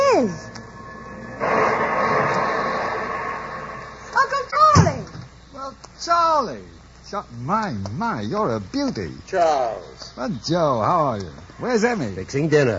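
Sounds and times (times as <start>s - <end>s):
train rumbling and hissing as it halts at a station: 0.0s - 5.4s
speech: 6.1s - 12.7s.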